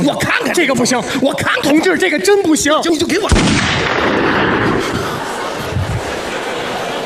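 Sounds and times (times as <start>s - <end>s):
speech: 0.0s - 4.6s
rifle gunshot: 3.3s - 4.9s
laughter: 4.2s - 7.0s.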